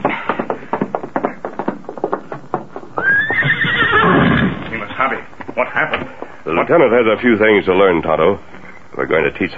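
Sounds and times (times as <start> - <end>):
horse hooves clip-clopping: 0.0 - 6.4
horse whinnying: 3.0 - 4.7
speech: 6.6 - 9.5.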